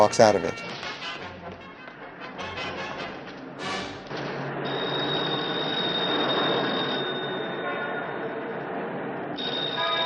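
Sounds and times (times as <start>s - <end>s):
speech: 0.0s - 0.7s
busy city street noise: 3.0s - 10.0s
steady high tone: 4.6s - 8.6s, 9.4s - 10.0s
telephone in a phone booth on a city street ringing: 4.7s - 8.2s.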